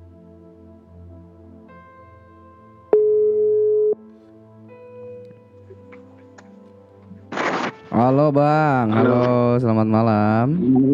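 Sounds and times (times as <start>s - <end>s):
phone dialing tone beep: 3.0s - 4.0s
burst of static: 7.3s - 7.8s
speech: 8.0s - 10.9s.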